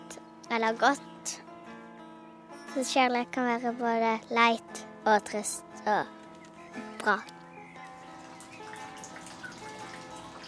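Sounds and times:
speech: 0.5 - 1.4, 2.8 - 6.2, 6.8 - 7.3
heavy rain dripping and pattering on a grey day: 7.8 - 10.4.

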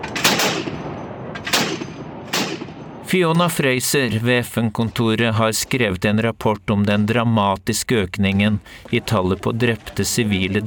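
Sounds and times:
gunshots from soldiers on patrol shooting toward a slope: 0.0 - 3.1
speech: 3.1 - 10.6.

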